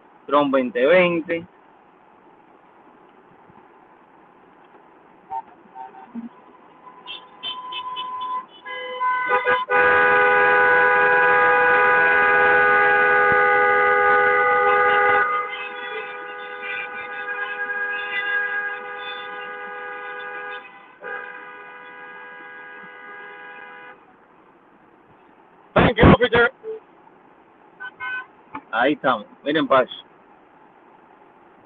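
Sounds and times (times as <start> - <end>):
speech: 0.3 - 1.6, 29.0 - 30.0
car horns honking in a slow-moving car caravan: 5.2 - 24.2, 27.7 - 30.0.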